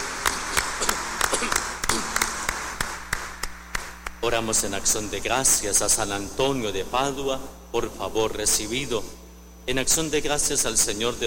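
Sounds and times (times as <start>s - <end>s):
group clapping to congratulate birthday celebrants: 0.0s - 4.2s
soft room noise: 0.0s - 11.2s
speech: 4.3s - 11.2s.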